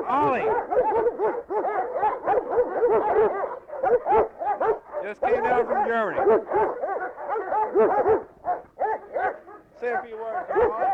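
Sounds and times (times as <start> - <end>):
several dogs barking in a kennel: 0.0 - 10.9
speech: 0.1 - 4.2, 5.1 - 7.0, 7.6 - 8.3.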